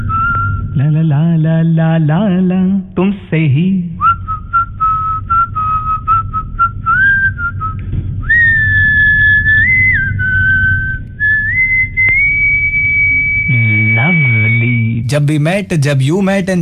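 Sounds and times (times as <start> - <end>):
melodic human whistling: 0.0 - 0.9, 4.0 - 15.2
low steady rumble: 0.0 - 16.6
speech: 0.8 - 3.9, 15.1 - 16.6.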